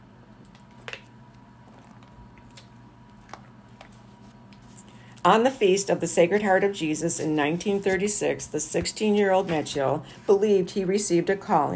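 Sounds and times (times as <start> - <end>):
low steady hum: 0.0 - 11.7
person drinking water: 1.5 - 2.5
speech: 5.2 - 11.7.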